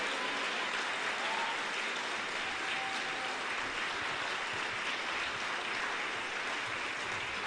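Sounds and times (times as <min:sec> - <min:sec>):
crowd clapping: 0:00.0 - 0:07.4.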